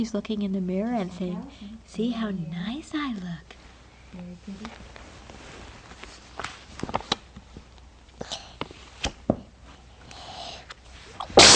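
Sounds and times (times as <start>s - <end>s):
speech: 0.0s - 5.0s
quiet clicks and rustles: 4.6s - 9.2s
loud sneeze: 11.2s - 11.5s.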